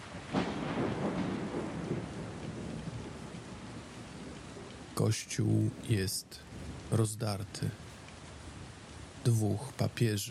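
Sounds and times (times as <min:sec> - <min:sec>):
deep rolling thunder over Rome: 0:00.0 - 0:05.0
steady hissing rain in a thunderstorm over Rome: 0:00.0 - 0:10.2
speech: 0:05.0 - 0:07.8, 0:09.2 - 0:10.2.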